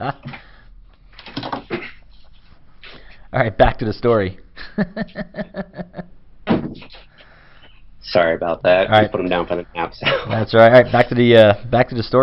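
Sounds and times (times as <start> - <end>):
speech: 0.0 - 0.4, 3.4 - 6.1, 8.0 - 12.2
door closing thud: 6.5 - 6.8.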